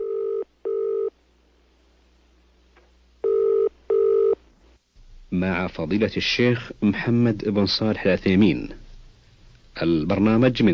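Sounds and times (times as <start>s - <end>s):
telephone ringing tones in a radio program jingle: 0.0s - 1.1s, 3.2s - 4.4s
speech: 5.4s - 8.8s, 9.8s - 10.7s.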